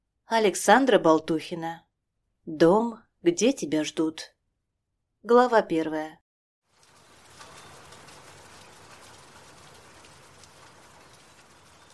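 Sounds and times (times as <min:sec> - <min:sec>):
speech: 0:00.3 - 0:01.8, 0:02.5 - 0:04.3, 0:05.2 - 0:06.2
light drizzling rain pattering: 0:06.7 - 0:11.9.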